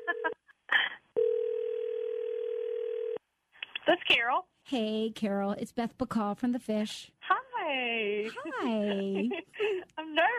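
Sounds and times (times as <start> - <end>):
laughter: 0.0 - 1.0, 8.2 - 10.0
telephone dial tone: 1.2 - 3.2
speech: 3.9 - 7.2, 8.0 - 10.3.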